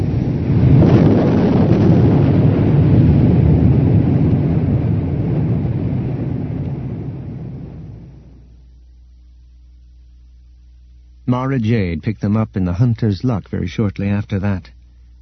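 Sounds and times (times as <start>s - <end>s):
massive explosion with a deep thundering roar: 0.0s - 8.5s
speech: 11.3s - 14.8s.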